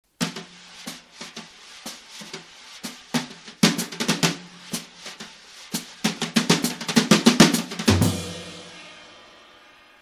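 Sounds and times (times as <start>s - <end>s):
rock drums played with brushes: 0.1s - 9.6s.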